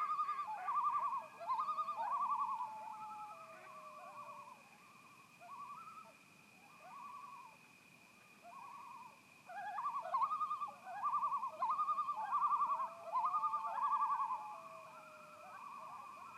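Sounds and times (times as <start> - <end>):
several loons in a tremolo chorus: 0.0 - 4.6, 8.4 - 16.3
constant high hum: 0.0 - 16.3.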